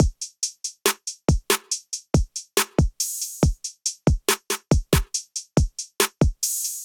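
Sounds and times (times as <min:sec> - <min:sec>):
trap drum kit beat at 70 bpm: 0:00.0 - 0:06.8.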